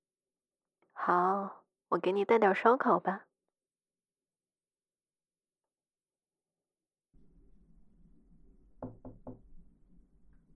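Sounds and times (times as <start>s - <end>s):
speech: 1.0s - 3.3s
firm knocking on a door: 8.8s - 9.5s.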